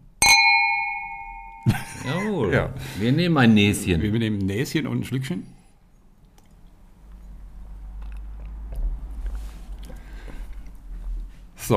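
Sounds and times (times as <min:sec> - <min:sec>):
small wine glasses clinking with high ringing tone: 0:00.2 - 0:01.7
speech: 0:01.6 - 0:05.6.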